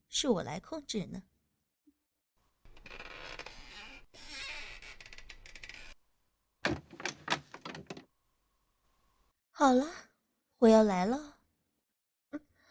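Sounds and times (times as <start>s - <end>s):
speech: 0.2s - 1.3s, 9.6s - 10.0s, 10.6s - 11.3s
reclining chair clicks and creaks as it settles: 2.7s - 6.0s, 6.6s - 8.1s
reclining chair being lowered flat with a long mechanical rasp and slide: 6.6s - 8.0s.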